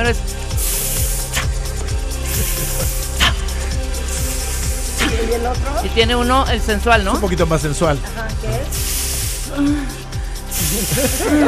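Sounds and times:
dry ice fog machine spraying: 0.0s - 5.7s, 8.5s - 11.4s
speech: 0.1s - 0.5s, 5.2s - 8.9s, 9.5s - 10.0s, 10.6s - 11.4s
laughter: 2.2s - 3.4s, 9.6s - 11.4s.

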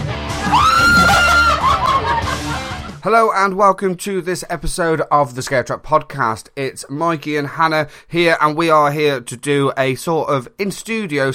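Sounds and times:
person screaming in a scare maze in Walsall: 0.4s - 2.4s
laughter: 0.5s - 3.0s
speech: 3.0s - 11.3s.

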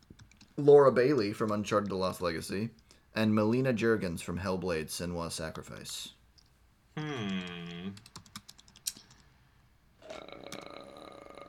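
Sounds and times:
computer keyboard typing: 0.0s - 0.6s, 7.9s - 9.2s
speech: 0.6s - 6.2s, 7.0s - 8.2s
loud low burp-like vocal sound: 7.0s - 8.0s, 10.0s - 11.4s.

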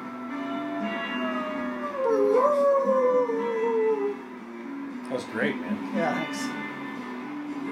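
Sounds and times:
wolves howling: 0.0s - 4.4s
speech: 5.2s - 6.6s.

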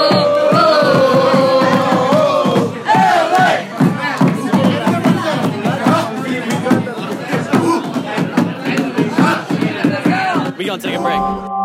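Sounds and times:
dense roar of many people: 0.0s - 11.5s
sports fans cheering and chanting after their team lost: 0.0s - 11.5s.

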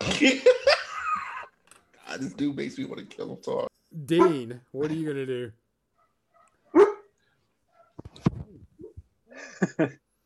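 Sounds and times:
laughter: 0.0s - 1.6s, 9.3s - 10.0s
speech: 0.1s - 0.7s, 2.2s - 5.6s, 9.6s - 10.0s
dogs barking excitedly: 4.1s - 4.5s, 6.0s - 7.1s.

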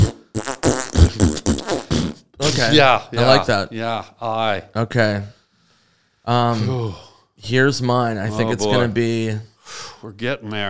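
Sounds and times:
person imitating a fart: 0.0s - 2.7s
speech: 2.6s - 5.4s, 6.3s - 10.6s.

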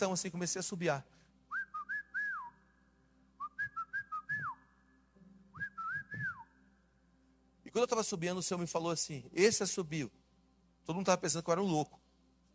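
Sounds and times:
speech: 0.0s - 1.2s, 7.8s - 10.2s, 10.9s - 12.0s
person whistling a short calling tune: 1.5s - 2.7s, 3.4s - 4.8s, 5.5s - 6.6s.

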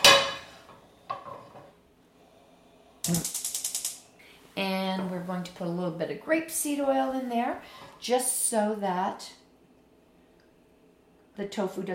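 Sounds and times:
cooking pan clanging as it is taken and handled: 0.0s - 0.5s
speech: 3.1s - 3.4s, 4.6s - 9.4s, 11.4s - 11.9s.

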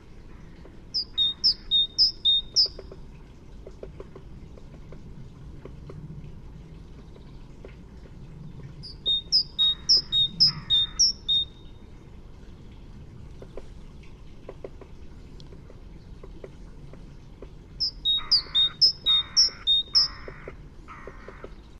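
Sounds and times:
great tit song: 0.6s - 3.0s, 8.8s - 11.7s, 17.8s - 21.5s.

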